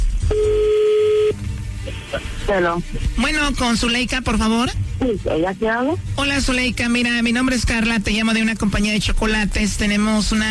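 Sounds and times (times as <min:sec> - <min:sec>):
telephone tone while a call is being joined: 0:00.3 - 0:01.4
speech: 0:02.5 - 0:10.5.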